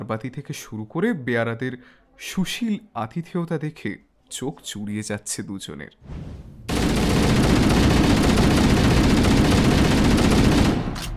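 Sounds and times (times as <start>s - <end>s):
speech: 0.1s - 6.6s
dense continuous gunfire in a hotel: 6.7s - 11.1s.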